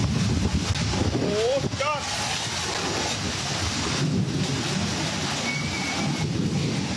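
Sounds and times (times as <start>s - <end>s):
heavy rain in a rainstorm: 0.0s - 6.9s
strong gusting wind: 0.0s - 6.9s
faint whistling tones: 5.4s - 6.3s.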